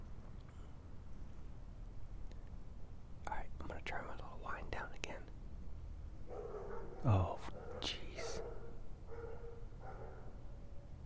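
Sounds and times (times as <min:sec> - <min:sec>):
low rumble of noise: 0:00.0 - 0:11.0
dogs barking: 0:06.2 - 0:10.6
speech: 0:07.0 - 0:07.5.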